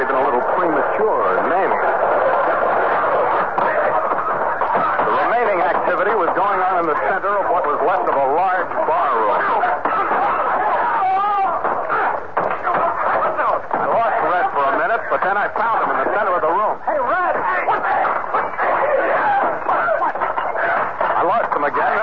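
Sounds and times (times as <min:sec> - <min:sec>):
rowdy bar brawl crowd shouting and clamoring in a cabaret: 0:00.0 - 0:22.0
laughter: 0:12.6 - 0:22.0.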